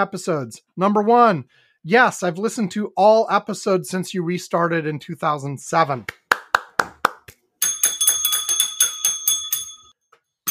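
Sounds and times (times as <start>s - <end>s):
speech: 0.0s - 6.2s
sharp claps or knocks: 6.0s - 8.7s
small bell rung rapidly: 7.6s - 10.4s.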